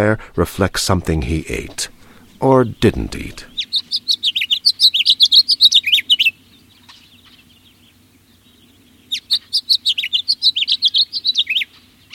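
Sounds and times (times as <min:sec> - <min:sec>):
speech: 0:00.0 - 0:03.5
house finch singing warbling phrases: 0:01.0 - 0:12.1.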